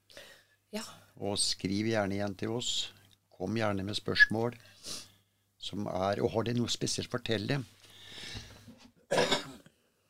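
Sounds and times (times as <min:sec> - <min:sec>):
speech: 0:00.7 - 0:08.5
person clearing throat with a raspy breathy rumble: 0:09.1 - 0:09.7
person coughing sharply: 0:09.1 - 0:09.7.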